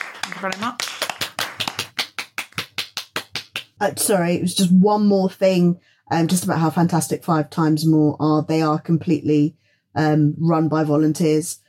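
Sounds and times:
audience applause: 0:00.0 - 0:02.8
speech: 0:00.4 - 0:00.9, 0:03.8 - 0:11.6.

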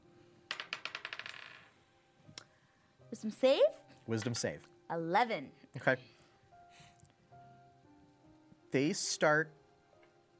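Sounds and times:
die clattering across a hard tabletop: 0:00.5 - 0:01.7
speech: 0:03.1 - 0:06.2, 0:08.7 - 0:09.6.

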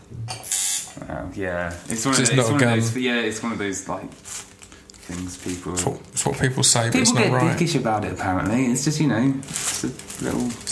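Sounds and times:
tattoo machine buzzing: 0:00.4 - 0:01.0
speech: 0:01.1 - 0:04.5, 0:05.1 - 0:10.7.

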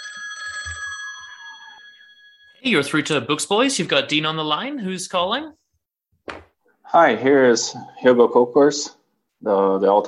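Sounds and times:
telephone ringing: 0:00.0 - 0:04.3
speech: 0:02.6 - 0:05.6, 0:06.9 - 0:10.0.

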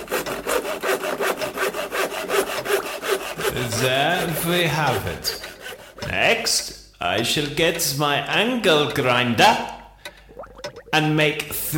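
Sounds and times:
saw cutting a piece of tree trunk: 0:00.0 - 0:06.7
speech: 0:03.6 - 0:05.4, 0:06.1 - 0:09.8, 0:11.0 - 0:11.7.

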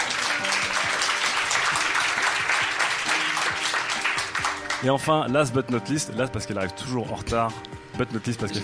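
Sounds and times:
crowd applauding: 0:00.0 - 0:05.0
speech: 0:04.8 - 0:08.6.

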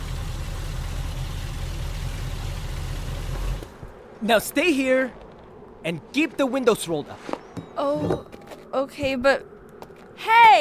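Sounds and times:
car engine idling at a rest stop: 0:00.0 - 0:03.9
speech: 0:04.2 - 0:05.2, 0:05.8 - 0:09.5, 0:10.2 - 0:10.5.

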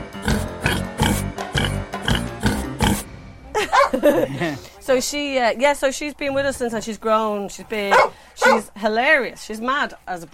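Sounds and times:
person imitating pig oinking grunts: 0:00.2 - 0:03.0
laughter: 0:03.6 - 0:04.8
speech: 0:04.0 - 0:10.3.

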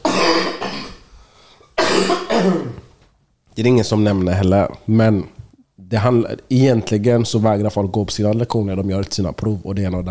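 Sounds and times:
person coughing harshly: 0:00.0 - 0:01.1, 0:01.8 - 0:02.9
speech: 0:02.1 - 0:02.8, 0:03.6 - 0:10.0.

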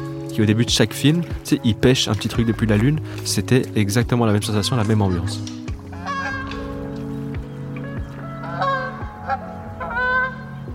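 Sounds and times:
speech: 0:00.4 - 0:05.7
Canada geese honking as they take flight: 0:02.0 - 0:10.7.

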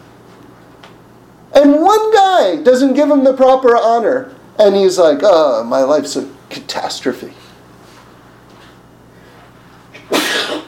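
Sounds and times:
speech: 0:01.6 - 0:07.4
person sneezing: 0:10.0 - 0:10.6.

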